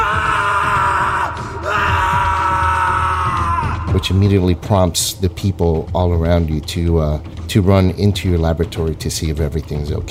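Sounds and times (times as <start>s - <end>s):
person in a laboratory screaming in pain: 0.0s - 4.0s
speech: 4.0s - 10.1s.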